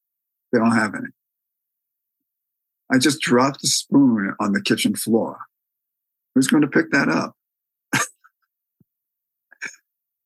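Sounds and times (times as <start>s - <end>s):
speech: 0.5s - 1.2s, 2.9s - 5.5s, 6.4s - 8.1s
person coughing as if clearing something stuck in the throat: 7.9s - 8.2s.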